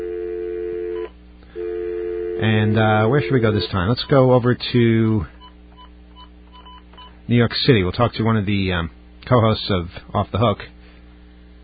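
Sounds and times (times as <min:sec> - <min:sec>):
telephone line electronic tone as a call is dialed: 0:00.0 - 0:03.7
speech: 0:02.4 - 0:05.4, 0:07.3 - 0:10.8.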